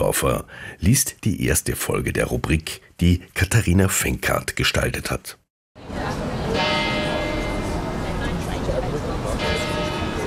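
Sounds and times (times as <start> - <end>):
speech: 0.0 - 6.1
church bells ringing: 6.5 - 10.2.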